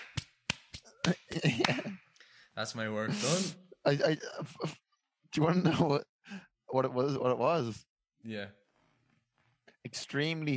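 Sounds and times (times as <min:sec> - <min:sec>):
hands slapping together: 0:00.0 - 0:02.2
speech: 0:01.1 - 0:02.0, 0:02.6 - 0:08.6, 0:09.8 - 0:10.5.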